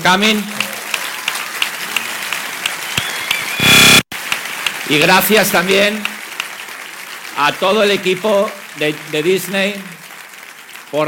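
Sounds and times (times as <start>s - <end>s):
speech: 0.0s - 0.6s, 4.9s - 6.1s, 7.4s - 10.0s
large audience applauding at a film premiere: 0.0s - 11.0s
brief tonal whistle or cheer: 2.7s - 4.0s.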